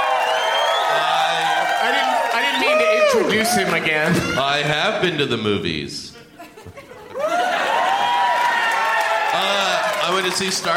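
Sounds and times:
crowd applauding: 0:00.0 - 0:04.6, 0:07.1 - 0:10.7
speech: 0:03.1 - 0:06.8, 0:10.1 - 0:10.7
laughter: 0:06.1 - 0:07.9.

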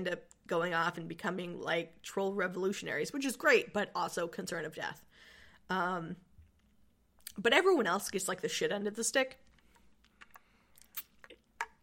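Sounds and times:
speech: 0:00.0 - 0:06.3, 0:07.4 - 0:09.4
person drinking water: 0:09.5 - 0:11.8.

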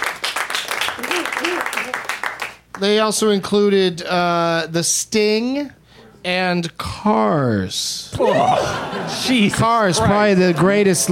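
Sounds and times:
audience applause: 0:00.0 - 0:02.6
speech: 0:01.0 - 0:02.2, 0:02.8 - 0:11.1
laughter: 0:08.2 - 0:11.1.

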